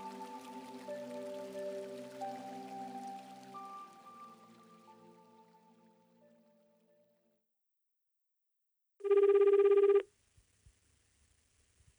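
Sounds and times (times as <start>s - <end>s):
soft chime-like tone: 0.0s - 6.2s
telephone ringing at a massage shop: 9.0s - 10.0s.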